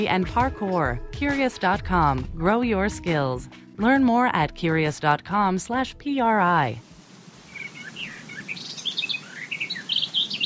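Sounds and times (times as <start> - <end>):
speech: 0.0 - 6.9
summer birdsong of several birds chirping and trilling: 7.4 - 10.4.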